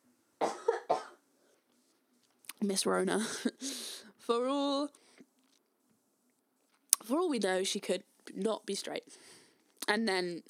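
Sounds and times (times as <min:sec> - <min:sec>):
harsh raspy coughing: 0:00.4 - 0:01.2
speech: 0:02.6 - 0:03.6, 0:04.3 - 0:05.0, 0:07.1 - 0:09.3, 0:09.9 - 0:10.4.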